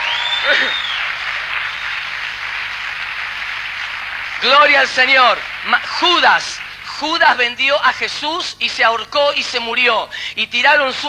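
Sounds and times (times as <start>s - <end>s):
large crowd applauding loudly: 0.0s - 7.6s
speech: 0.4s - 1.0s, 4.4s - 11.0s.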